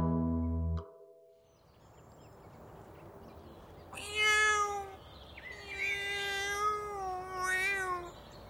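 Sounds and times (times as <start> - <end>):
cat meowing: 4.0 - 8.2.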